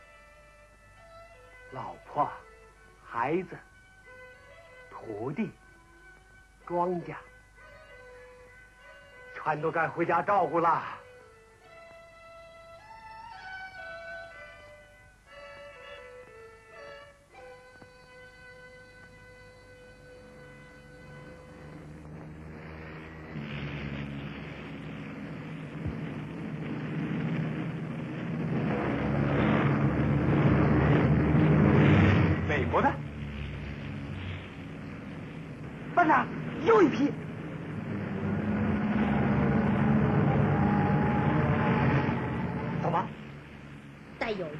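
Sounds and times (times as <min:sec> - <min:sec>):
speech: 0:01.7 - 0:02.4, 0:03.1 - 0:03.7, 0:05.0 - 0:05.6, 0:06.7 - 0:07.3, 0:09.4 - 0:11.0
descending whistling tones of aircraft dropping bombs: 0:17.7 - 0:44.5
military aircraft flying overhead: 0:18.0 - 0:44.5
broad rumbling roar of diving military aircraft: 0:20.4 - 0:44.5.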